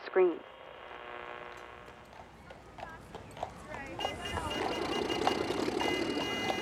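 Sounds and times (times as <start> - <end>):
speech: 0.2 - 0.5
carriage horse hooves clip-clopping on a street: 1.5 - 6.6
bustling street background with horse-drawn carriages and streetcars: 1.6 - 6.6.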